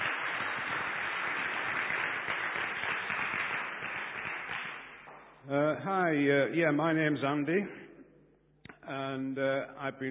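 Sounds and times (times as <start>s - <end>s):
audience applauding: 0.0s - 5.1s
speech: 5.5s - 7.8s, 8.9s - 10.0s.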